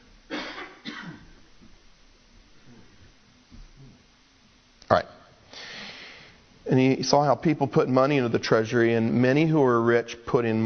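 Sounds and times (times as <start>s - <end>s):
person coughing harshly: 0.3s - 1.4s
speech: 4.9s - 5.1s, 6.7s - 10.6s
breathing: 5.5s - 6.5s.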